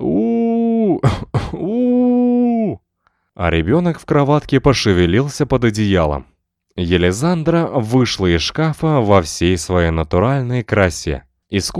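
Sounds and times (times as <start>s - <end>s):
human voice imitating a creaky wailing howl: 0.0s - 2.8s
speech: 3.4s - 11.7s.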